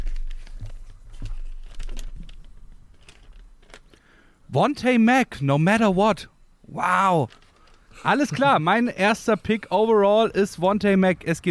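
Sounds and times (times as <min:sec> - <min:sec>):
folded paper note from a trouser pocket crinkling as it is unfolded: 0:00.0 - 0:04.0, 0:07.2 - 0:08.5
speech: 0:04.5 - 0:07.4, 0:08.0 - 0:11.4.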